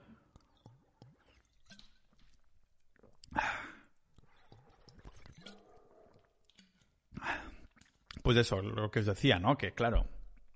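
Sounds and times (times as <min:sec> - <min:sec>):
person sipping water in a family house in a village: 0:00.0 - 0:08.2
speech: 0:08.3 - 0:10.2.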